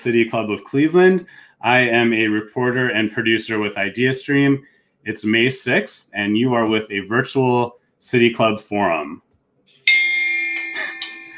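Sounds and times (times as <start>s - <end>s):
speech: 0.0s - 9.2s
gong strike: 9.9s - 11.3s.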